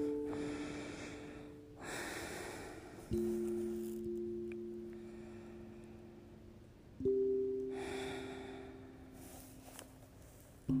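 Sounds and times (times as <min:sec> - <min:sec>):
slow deep breathing during a guided breathing exercise: 0:00.0 - 0:04.0, 0:04.8 - 0:06.5, 0:07.7 - 0:10.7.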